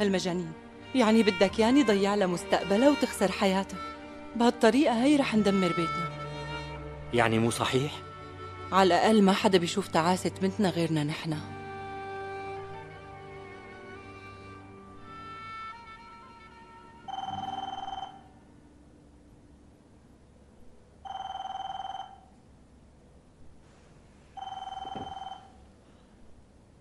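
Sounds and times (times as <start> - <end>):
speech: 0.0 - 6.2, 7.1 - 8.1, 8.7 - 11.6
telephone ringing in loud electronic bursts: 17.1 - 18.4, 21.0 - 22.4, 24.4 - 25.6.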